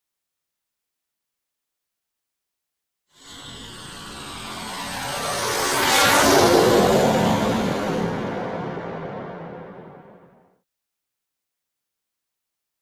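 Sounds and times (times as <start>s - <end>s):
airplane passing overhead: 3.2s - 10.3s.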